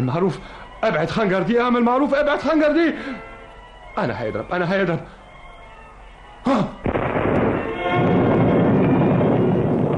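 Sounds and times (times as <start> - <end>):
speech: 0.0 - 3.3, 4.0 - 5.2, 6.4 - 6.7
cannon firing at an English military camp: 6.8 - 9.9.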